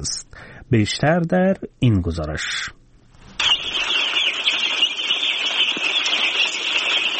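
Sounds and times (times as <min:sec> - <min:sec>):
speech: 0:00.0 - 0:02.8
many day-old chicken chicks peeping on a poultry farm in Parwan province: 0:03.4 - 0:07.1.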